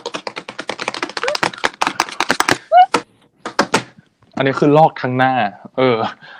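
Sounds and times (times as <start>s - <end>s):
hard tapping on a computer keyboard: 0.0s - 2.6s
speech: 4.4s - 6.3s.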